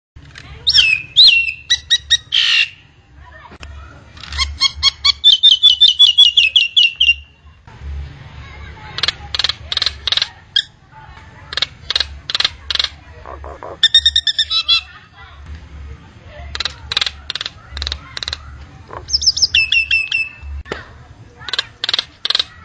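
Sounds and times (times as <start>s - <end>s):
Nias hill myna calling: 0.6s - 2.8s, 4.2s - 7.3s, 11.4s - 15.0s, 16.5s - 20.5s, 21.3s - 22.6s.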